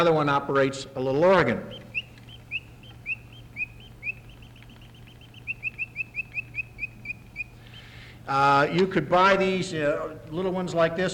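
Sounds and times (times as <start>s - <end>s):
speech: 0.0s - 1.8s, 8.3s - 11.1s
faint steady low hum: 0.0s - 11.1s
mechanical singing bird box chirping: 1.1s - 8.0s.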